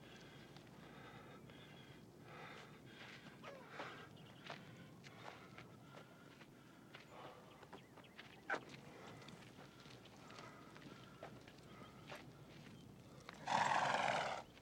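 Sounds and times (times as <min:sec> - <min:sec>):
horse neighing: 0:13.4 - 0:14.4.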